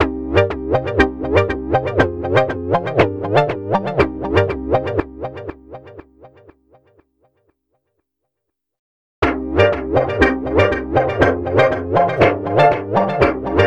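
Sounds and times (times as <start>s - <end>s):
house music synth: 0.4s - 5.5s, 9.6s - 13.6s.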